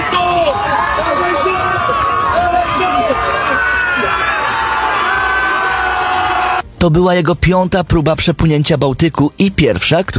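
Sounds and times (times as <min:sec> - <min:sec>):
crowd cheering on a beach: 0:00.0 - 0:06.6
speech: 0:06.8 - 0:10.1.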